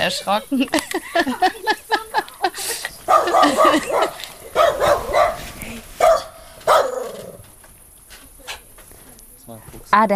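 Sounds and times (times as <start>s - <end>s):
speech: 0.0s - 1.8s, 10.0s - 10.1s
laughter: 0.0s - 4.8s
dog barking: 3.0s - 7.4s.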